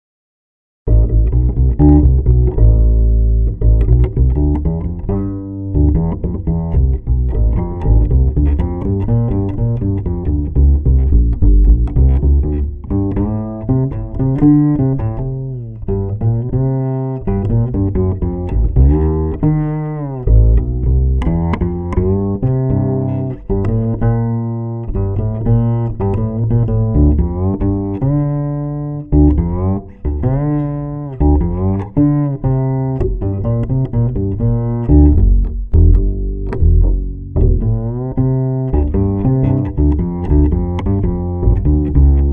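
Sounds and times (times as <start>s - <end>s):
double bass warming up: 0.9s - 42.3s.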